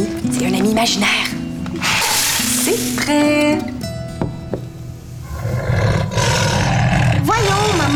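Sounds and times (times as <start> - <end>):
speech: 0.4 - 2.0, 2.7 - 3.8, 7.6 - 7.9
lion roaring with a deep rumbling growl: 5.2 - 7.9.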